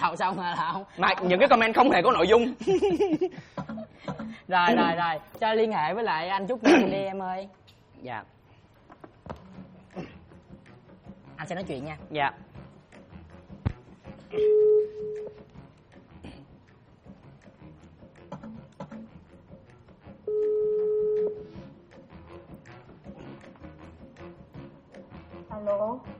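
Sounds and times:
speech: 0:00.0 - 0:08.4, 0:11.4 - 0:12.5, 0:14.3 - 0:15.1, 0:25.6 - 0:26.1
phone ringback tone while placing a call: 0:14.4 - 0:15.4, 0:20.3 - 0:21.6.

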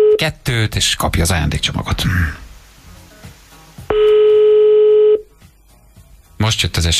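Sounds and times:
telephone tone as a call is placed to a radio listener: 0:00.0 - 0:00.2, 0:03.9 - 0:05.3
speech: 0:00.2 - 0:02.5, 0:06.4 - 0:06.9
faint noise: 0:00.2 - 0:04.4.

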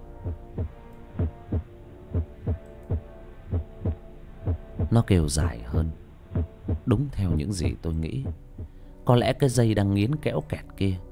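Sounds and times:
faint hum: 0:00.0 - 0:11.1
pounding heartbeat sound effect: 0:00.2 - 0:05.0, 0:06.4 - 0:06.9
speech: 0:04.9 - 0:06.0, 0:06.9 - 0:11.1.

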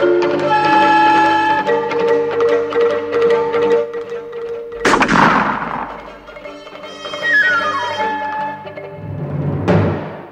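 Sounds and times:
orchestral music: 0:00.0 - 0:10.3
rifle fired from horseback during a chase: 0:04.8 - 0:06.4.

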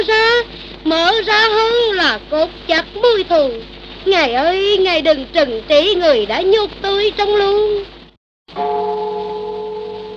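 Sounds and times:
speech: 0:00.0 - 0:07.9
temple bell ringing: 0:08.6 - 0:10.1.

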